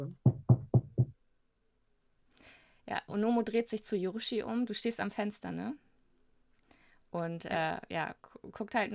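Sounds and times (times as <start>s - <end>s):
speech: 0.0s - 0.2s, 2.9s - 5.9s, 7.1s - 8.9s
soft knocking on a wooden door: 0.2s - 1.2s.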